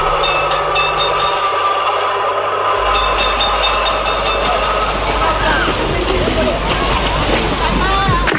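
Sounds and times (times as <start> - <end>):
metallic tram wheel squeals: 0.0 - 5.8
tram rumbling on rails: 0.0 - 8.3
faint murmur of indistinct voices: 4.2 - 8.3.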